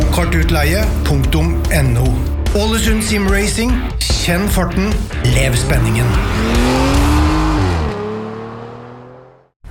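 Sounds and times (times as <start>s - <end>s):
speech: 0.2s - 7.0s
loud engine roar: 5.1s - 9.6s.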